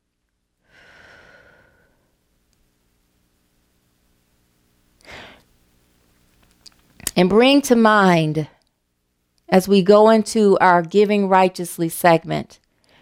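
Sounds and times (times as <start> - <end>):
deep breath in: 0.6 - 2.2, 5.0 - 5.4
speech: 7.2 - 8.6, 9.5 - 12.6.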